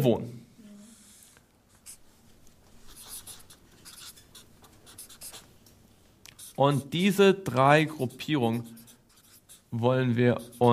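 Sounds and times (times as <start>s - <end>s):
speech: 0.0s - 0.4s, 6.6s - 8.8s, 9.7s - 10.7s
handwriting strokes as a word is written by hand: 2.8s - 5.5s, 6.4s - 6.6s, 7.9s - 9.7s, 10.3s - 10.7s.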